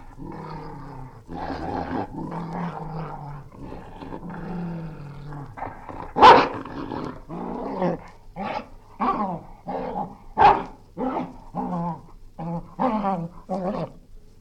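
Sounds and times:
English springer spaniel snarling and growling: 0.0s - 14.1s
English springer spaniel sharp snaps or barks: 6.2s - 6.6s, 10.4s - 11.4s.

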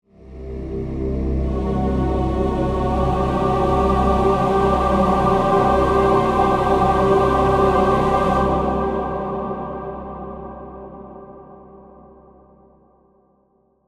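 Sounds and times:
horror music: 0.2s - 11.3s.

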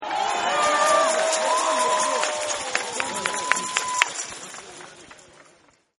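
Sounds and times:
people cheering woo-oo-woo: 0.0s - 4.8s
applause: 0.0s - 5.9s.

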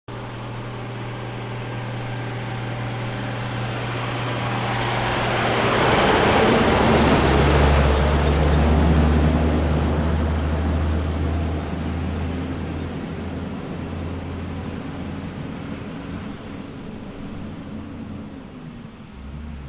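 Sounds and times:
dump truck passing by: 0.1s - 19.6s.

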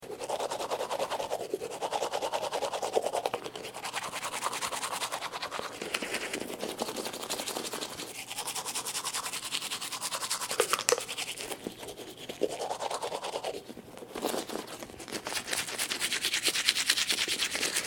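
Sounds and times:
toothbrush brushing teeth with lots of foam: 0.0s - 17.8s.

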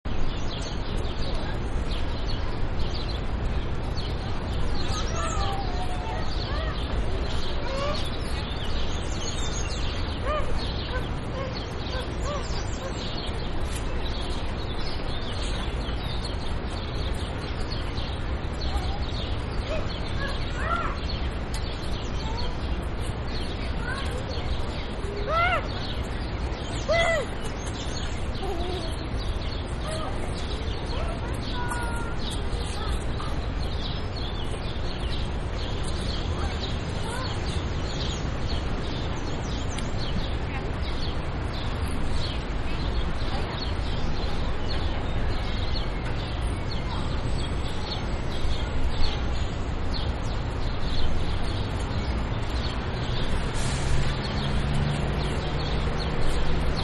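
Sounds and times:
birds in a city park: 0.1s - 56.8s
city traffic: 0.1s - 56.8s
children in a city park playground: 0.2s - 56.8s.

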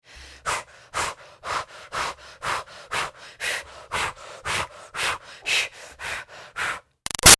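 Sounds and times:
woman breathing heavily and fast during exercise: 0.0s - 6.9s.

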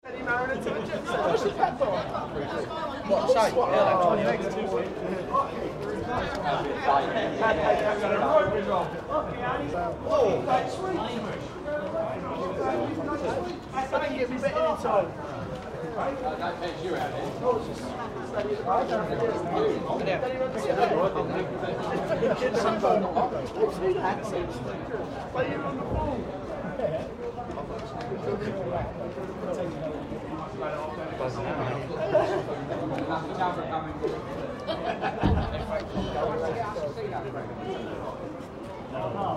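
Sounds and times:
greyhound stadium crowd chatting animatedly under grandstand: 0.0s - 39.3s
laughter: 31.8s - 32.9s, 34.1s - 36.4s.

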